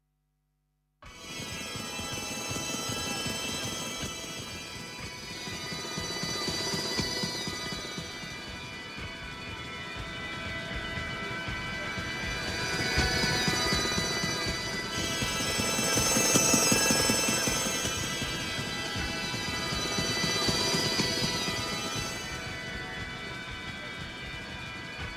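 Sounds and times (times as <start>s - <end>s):
expression drone: 1.1s - 25.1s.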